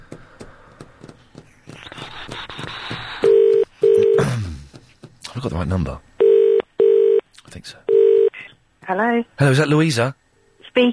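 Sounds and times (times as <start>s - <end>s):
loud outgoing phone ringing tone: 3.3s - 4.2s, 6.2s - 7.2s, 7.9s - 8.4s
speech: 5.4s - 6.1s, 8.9s - 10.2s, 10.8s - 10.9s.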